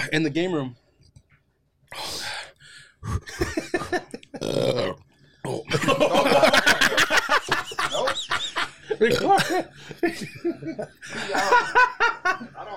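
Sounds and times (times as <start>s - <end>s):
speech: 0.1s - 0.8s, 3.0s - 3.6s, 9.0s - 12.7s
guttural throat noises and coughing: 3.0s - 6.0s, 8.9s - 9.7s
person burping: 3.0s - 6.0s, 9.0s - 9.7s
laughter: 5.7s - 12.7s.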